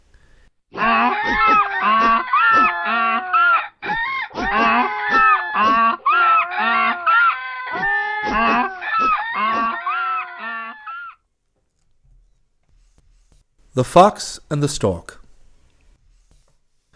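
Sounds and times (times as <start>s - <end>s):
animals braying, crowing and honking in a chorus: 0.7s - 11.2s
donkey braying: 0.7s - 11.2s
speech: 13.8s - 15.2s.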